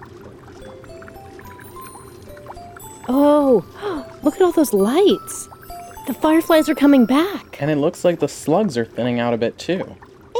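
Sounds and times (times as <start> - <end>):
liquid dripping and gurgling: 0.0 - 6.3
water filter filtering fresh stream water: 0.6 - 8.7
speech: 3.1 - 5.5, 6.1 - 10.1.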